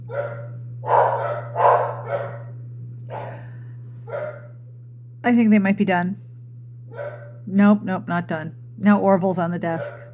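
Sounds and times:
two dogs barking: 0:00.0 - 0:03.5, 0:04.1 - 0:04.6, 0:06.9 - 0:07.4, 0:09.7 - 0:10.1
steady low electrical hum: 0:00.0 - 0:10.1
speech: 0:00.1 - 0:02.2, 0:05.3 - 0:06.2, 0:07.4 - 0:10.1.

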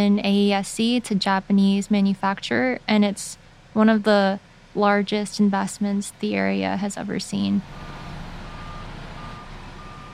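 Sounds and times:
speech: 0:00.0 - 0:07.9
heavy machinery at a battery cell factory construction site in South Carolina: 0:02.5 - 0:10.1
high-pitched reversing beep: 0:07.8 - 0:10.1.

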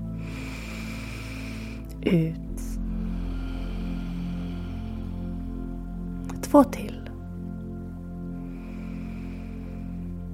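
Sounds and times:
long deep breath drawn in through the nose: 0:00.0 - 0:06.2, 0:08.1 - 0:10.3
speech: 0:02.0 - 0:02.6, 0:06.5 - 0:07.0.

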